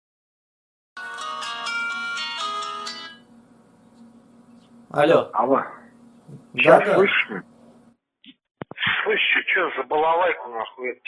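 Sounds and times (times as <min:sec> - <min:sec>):
telephone ringtone for an incoming call: 0:01.0 - 0:03.3
speech: 0:04.9 - 0:07.5, 0:09.1 - 0:11.0.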